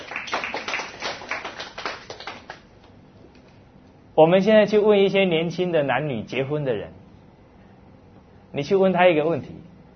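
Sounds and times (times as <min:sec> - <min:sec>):
crowd clapping: 0:00.0 - 0:02.9
speech: 0:04.2 - 0:07.0, 0:08.5 - 0:09.6.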